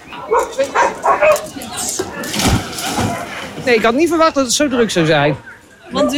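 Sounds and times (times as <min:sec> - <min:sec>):
several dogs barking and yipping at a dog swimming event in Groningen: 0:00.0 - 0:02.2
splashing at a swimming pool in Groningen: 0:00.0 - 0:05.0
lively crowd murmuring: 0:00.0 - 0:06.1
speech: 0:03.7 - 0:06.1.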